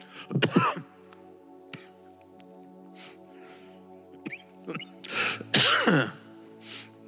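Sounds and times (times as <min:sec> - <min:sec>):
harsh coughs: 0:00.3 - 0:00.9, 0:05.5 - 0:06.2.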